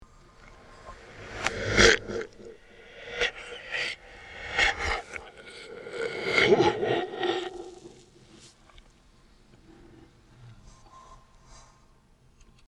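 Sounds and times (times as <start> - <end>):
person choking: 0.9 - 8.3.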